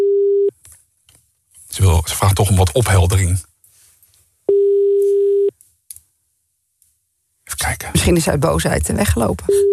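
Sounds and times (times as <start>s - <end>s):
telephone ringback tone while calling a landline: 0.0s - 0.5s, 4.5s - 5.5s
speech: 1.8s - 3.5s, 8.0s - 9.7s.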